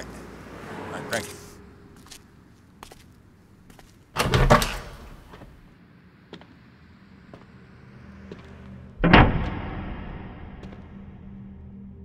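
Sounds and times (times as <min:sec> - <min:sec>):
speech: 0:01.1 - 0:01.4
footsteps: 0:01.2 - 0:04.1, 0:06.3 - 0:06.6, 0:07.3 - 0:08.9, 0:10.6 - 0:11.0
door opening and closing: 0:04.1 - 0:05.7, 0:09.0 - 0:11.0.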